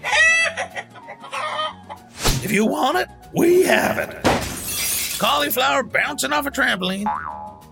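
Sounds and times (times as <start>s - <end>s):
two chickens clucking: 0.0s - 2.1s
speech: 2.4s - 4.3s, 5.2s - 7.4s.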